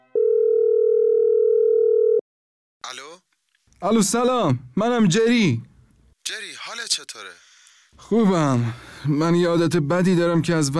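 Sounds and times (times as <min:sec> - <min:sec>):
telephone dial tone when placing a call: 0:00.2 - 0:02.2
speech: 0:03.8 - 0:10.7.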